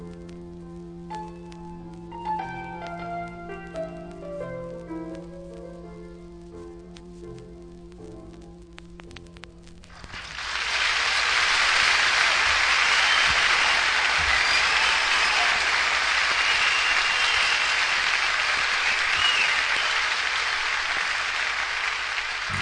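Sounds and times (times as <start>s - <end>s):
large audience applause at a live concert: 9.9s - 22.6s.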